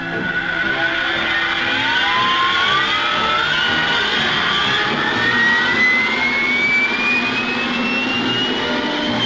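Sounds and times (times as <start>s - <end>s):
four jet engines of a Vulcan V-bomber roaring at scramble start: 0.0s - 9.2s.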